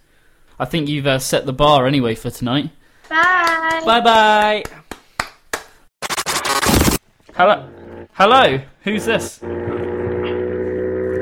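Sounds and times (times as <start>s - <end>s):
speech: 0.6s - 4.8s, 7.4s - 9.9s
motorbike engine droning over a phone line: 7.4s - 11.2s.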